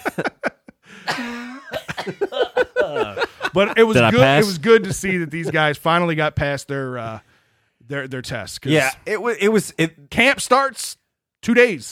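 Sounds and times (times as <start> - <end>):
laughter: 0.0 - 5.8
person coughing on request: 0.9 - 3.4
speech: 2.0 - 2.5, 3.6 - 7.3, 7.9 - 11.8.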